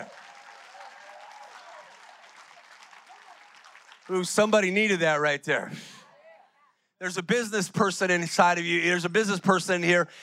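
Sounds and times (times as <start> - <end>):
voices cheering: 0.0 - 4.7
congregation clapping: 0.0 - 5.0
speech: 4.1 - 6.0, 7.0 - 10.2.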